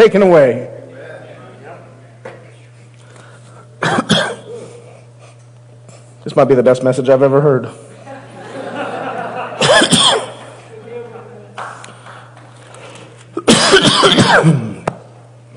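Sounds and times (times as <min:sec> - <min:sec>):
speech: 0:00.0 - 0:00.8, 0:06.3 - 0:07.9, 0:13.9 - 0:14.7
low constant hum: 0:00.0 - 0:15.5
preacher clearing his throat: 0:03.8 - 0:05.0, 0:09.6 - 0:10.6, 0:13.4 - 0:15.0
preacher coughing during a sermon: 0:03.8 - 0:05.0, 0:09.6 - 0:10.6, 0:13.4 - 0:14.9
laughter: 0:07.8 - 0:11.6.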